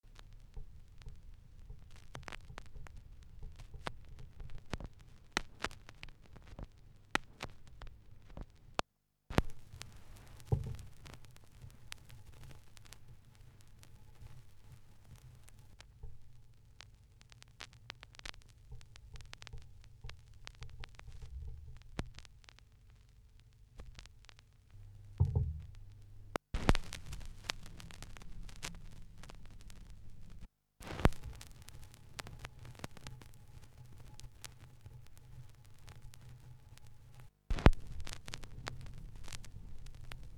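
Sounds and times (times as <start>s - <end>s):
vinyl record crackle: 0.0s - 40.3s.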